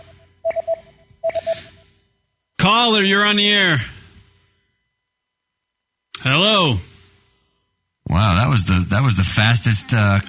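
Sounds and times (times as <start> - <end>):
incoming phone call electronic tones: 0.0 - 1.9
speech: 2.7 - 3.9, 6.3 - 6.9, 8.1 - 10.2.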